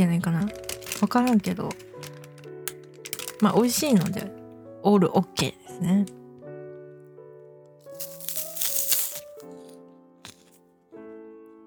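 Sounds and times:
speech: 0.0s - 1.9s, 3.4s - 6.2s
snack wrapper crinkling: 0.4s - 3.4s, 7.8s - 9.5s
stale snack crunching while being eaten: 7.9s - 9.5s.

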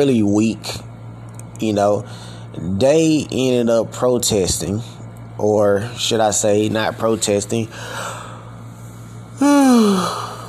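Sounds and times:
speech: 0.0s - 0.9s, 1.6s - 8.2s, 9.4s - 10.3s
person yawning: 9.4s - 10.4s.

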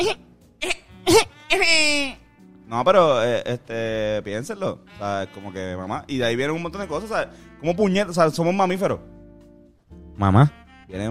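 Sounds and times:
baby crying in short choppy bursts: 0.0s - 2.3s
speech: 0.0s - 9.2s, 10.2s - 11.0s.

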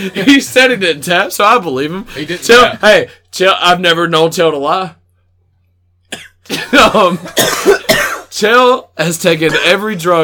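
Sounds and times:
speech: 0.0s - 5.0s, 6.1s - 7.8s, 8.4s - 10.2s
person coughing into a microphone: 6.1s - 8.3s.

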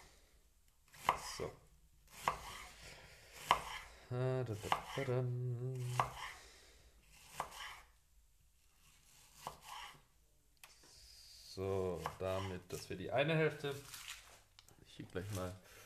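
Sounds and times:
speech: 1.4s - 1.6s, 4.1s - 6.3s, 11.6s - 14.1s, 15.0s - 15.8s
knife slicing a vegetable into thin rings on a cutting board: 2.1s - 2.7s, 3.4s - 3.8s, 4.6s - 5.1s, 5.8s - 6.4s, 7.1s - 7.9s, 8.8s - 10.1s, 12.0s - 12.9s.

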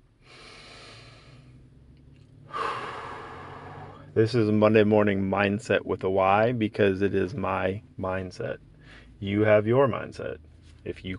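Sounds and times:
deep breath: 0.1s - 1.8s, 2.4s - 4.2s, 8.7s - 9.2s
speech: 4.2s - 11.1s.

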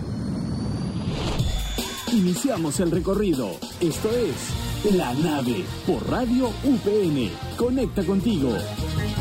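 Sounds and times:
engine roar of a craft taking off with rising whine: 0.0s - 1.4s
speech: 2.2s - 9.1s.

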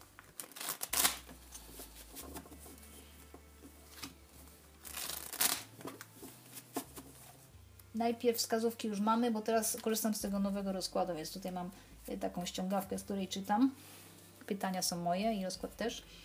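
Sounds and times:
tarot cards being shuffled by hand: 0.0s - 4.2s, 4.8s - 7.5s
speech: 8.0s - 16.2s.

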